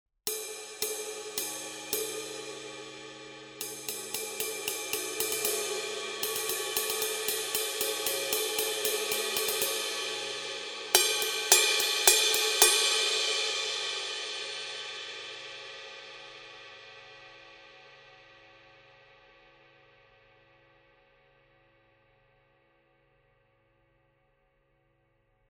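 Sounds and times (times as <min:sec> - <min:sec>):
Paiste Signature 20 mellow ride cymbal pattern: 0:00.3 - 0:15.6.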